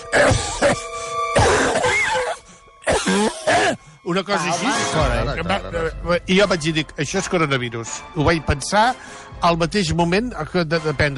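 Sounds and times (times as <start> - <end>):
person imitating a strange artificial-sounding cough: 0.0 - 3.8
speech: 4.1 - 11.1.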